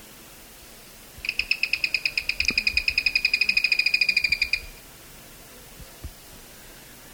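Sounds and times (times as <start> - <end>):
Zimmer's tody-tyrant high trill: 1.3 - 4.8.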